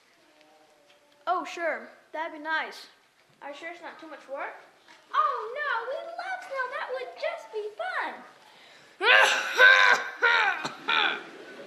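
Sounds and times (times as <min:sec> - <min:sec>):
speech: 0:01.3 - 0:05.6
harsh raspy coughs: 0:09.1 - 0:11.2.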